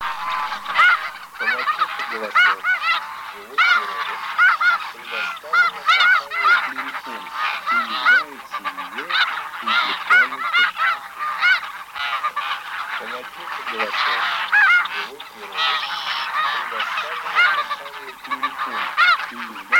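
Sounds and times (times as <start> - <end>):
snow goose calling: 0.0 - 19.7.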